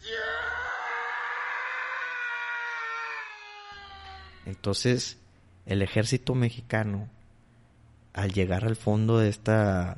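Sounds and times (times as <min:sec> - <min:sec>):
person screaming in agony: 0:00.0 - 0:04.5
speech: 0:04.5 - 0:07.2, 0:08.2 - 0:09.9.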